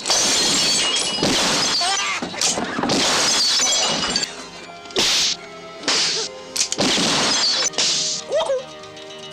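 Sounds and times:
glass struck and shattering: 0.0 - 4.4, 6.8 - 7.9
faint tonal background: 0.0 - 9.3.

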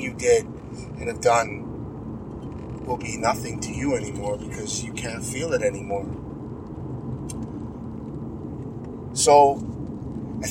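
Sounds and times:
car engine and road noise while driving on the road: 0.0 - 10.4
speech: 0.1 - 1.6, 2.9 - 6.3, 9.2 - 9.8.

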